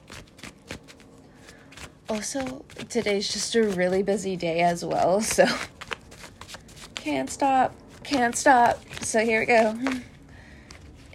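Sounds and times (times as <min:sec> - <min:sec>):
deck of tarot cards being shuffled: 0:00.0 - 0:11.1
speech: 0:02.1 - 0:05.8, 0:07.0 - 0:10.1.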